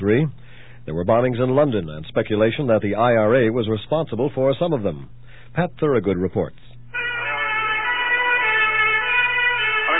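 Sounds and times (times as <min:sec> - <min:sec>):
speech: 0:00.0 - 0:06.6
ambulance siren in London city traffic: 0:06.9 - 0:09.9.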